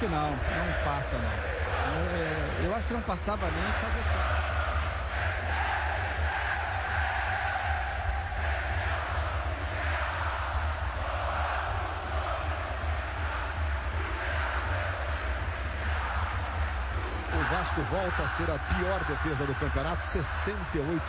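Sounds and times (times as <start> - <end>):
large stadium crowd singing the club anthem: 0.0 - 21.0
speech: 0.1 - 4.6, 17.8 - 21.0.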